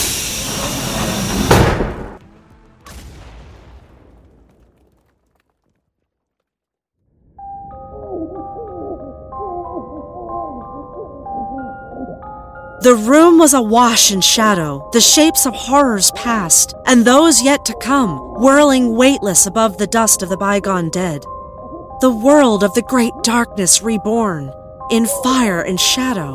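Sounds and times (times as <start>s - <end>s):
heavy door unlocking and swinging open: 0.0s - 2.2s
eerie tonal ambience: 7.4s - 26.3s
speech: 12.8s - 21.3s, 22.0s - 26.3s.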